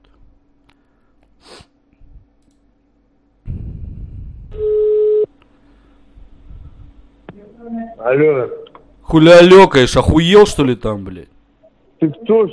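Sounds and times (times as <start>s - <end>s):
telephone call tone beep after dialing a number: 4.6s - 5.3s
speech: 8.0s - 11.4s, 12.0s - 12.5s.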